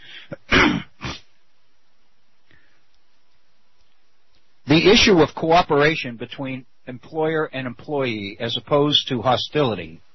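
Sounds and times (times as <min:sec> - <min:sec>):
person clearing throat: 0:00.2 - 0:01.3
speech: 0:04.8 - 0:10.0.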